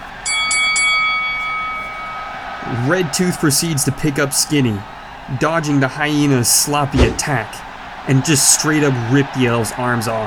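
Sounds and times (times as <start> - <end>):
bright metallic starting bell for a match: 0.3 - 2.4
speech: 2.7 - 10.2.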